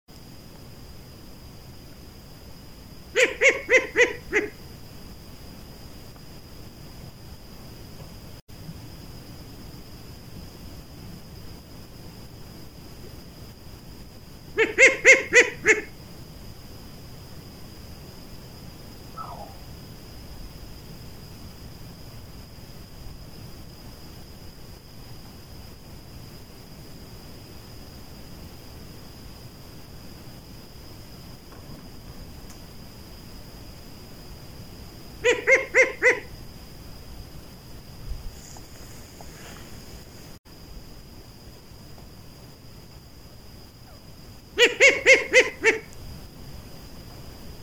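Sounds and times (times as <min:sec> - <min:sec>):
short-eared owl: 0:03.1 - 0:04.6, 0:14.6 - 0:16.0, 0:19.1 - 0:19.6, 0:35.2 - 0:36.3, 0:44.6 - 0:45.9.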